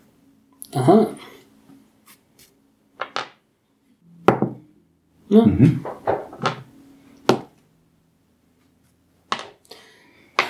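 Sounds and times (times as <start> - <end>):
speech: 0.7 - 1.4, 5.3 - 6.0
eight-sided and six-sided dice clattering on a hard tabletop: 3.0 - 3.4, 5.8 - 6.7, 9.3 - 9.6.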